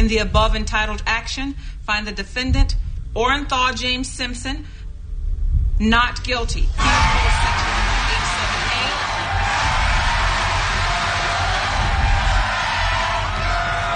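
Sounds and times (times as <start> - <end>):
speech: 0.1 - 4.8, 5.8 - 7.7
large crowd cheering, whooping and yelling: 6.8 - 13.9.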